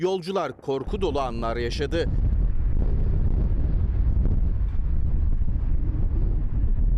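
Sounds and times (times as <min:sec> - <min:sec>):
speech: 0:00.0 - 0:02.2
strong storm wind gusting into the microphone: 0:00.6 - 0:06.9.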